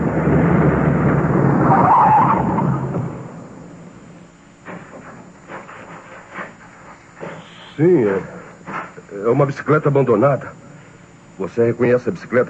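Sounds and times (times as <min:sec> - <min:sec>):
police chief's car braking hard to a stop with tire squeal: 0:00.0 - 0:03.6
speech: 0:07.8 - 0:08.3, 0:09.1 - 0:10.6, 0:11.4 - 0:12.4.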